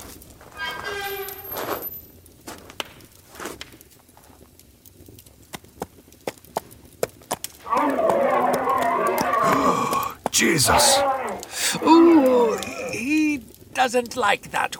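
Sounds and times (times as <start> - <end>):
horse hooves clip-clopping at a slow walk: 2.4 - 10.3
loud sustained vocal sound: 9.4 - 13.0
speech: 10.4 - 11.1, 11.7 - 14.7.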